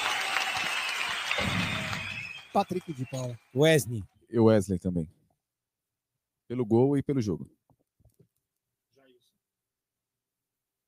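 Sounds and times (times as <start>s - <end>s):
applause: 0.0s - 3.9s
speech: 2.6s - 5.2s, 6.5s - 7.6s.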